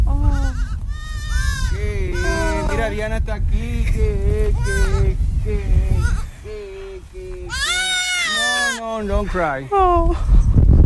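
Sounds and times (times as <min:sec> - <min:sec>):
low rumble of noise: 0:00.0 - 0:10.8
newborn auburn goat kid bleating: 0:00.3 - 0:02.8, 0:04.6 - 0:05.0, 0:07.5 - 0:08.8
speech: 0:02.9 - 0:06.2, 0:09.0 - 0:10.4.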